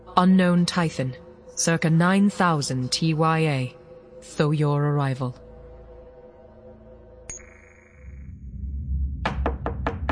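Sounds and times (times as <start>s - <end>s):
speech: 0.2s - 5.4s
firm knocks on a door: 9.2s - 10.0s.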